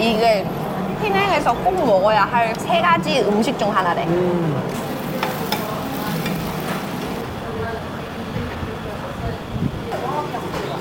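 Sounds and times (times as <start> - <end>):
low hum of chatter: 0.0 - 10.7
speech: 0.4 - 4.9
eggs and oysters stir-frying on a hot griddle: 4.7 - 7.6.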